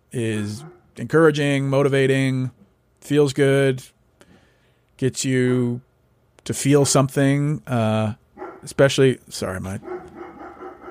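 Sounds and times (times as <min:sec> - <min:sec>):
speech: 0:00.1 - 0:04.0, 0:05.0 - 0:10.1
hounds barking: 0:00.6 - 0:01.0, 0:08.4 - 0:08.8, 0:09.7 - 0:10.8.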